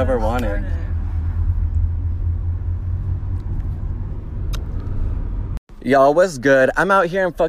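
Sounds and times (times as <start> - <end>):
speech: 0.0 - 0.8, 5.8 - 7.4
car interior engine and road drone while driving: 0.0 - 5.6.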